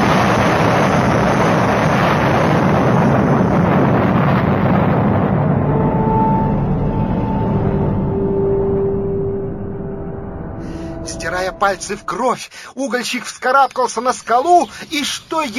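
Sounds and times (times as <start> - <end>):
loud explosion of a house with a long dense rumble: 0.0 - 10.0
speech: 11.6 - 15.5.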